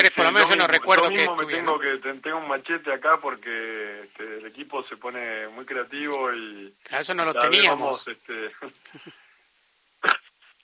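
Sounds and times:
speech: 0:00.0 - 0:09.2
sneeze: 0:10.0 - 0:10.4.

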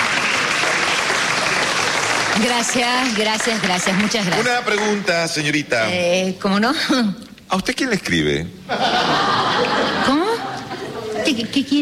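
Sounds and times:
audience applause of many hands clapping: 0:00.0 - 0:05.6
speech: 0:02.4 - 0:09.0, 0:11.3 - 0:11.8
laughter: 0:08.7 - 0:11.5.

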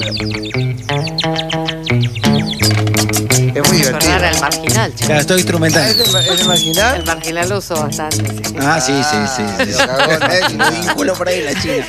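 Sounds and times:
laughter: 0:00.0 - 0:00.5, 0:08.6 - 0:11.8
instrumental music imitating blackbirds chirping: 0:00.0 - 0:11.8
speech: 0:00.1 - 0:00.6, 0:04.4 - 0:11.8.

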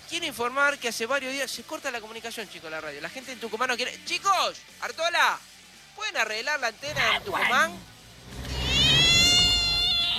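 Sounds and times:
speech: 0:00.1 - 0:07.9
cat meowing: 0:08.4 - 0:10.1.

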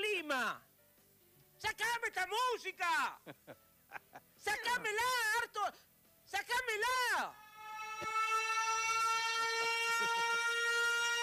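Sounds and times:
speech: 0:00.4 - 0:00.7, 0:01.6 - 0:07.4
siren with bright brassy tone: 0:07.3 - 0:11.2.

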